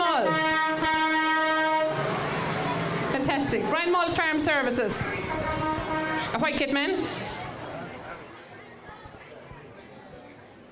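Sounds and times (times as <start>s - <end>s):
street parade crowd noise: 0.0s - 10.7s
big tractor horn blast in a street parade: 0.2s - 2.0s, 5.2s - 6.4s
speech: 3.4s - 5.5s, 6.4s - 7.2s.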